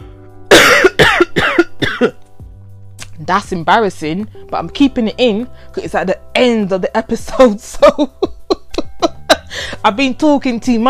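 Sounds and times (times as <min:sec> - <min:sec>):
person coughing harshly: 0:00.5 - 0:02.2
speech: 0:03.3 - 0:08.3, 0:09.6 - 0:10.8.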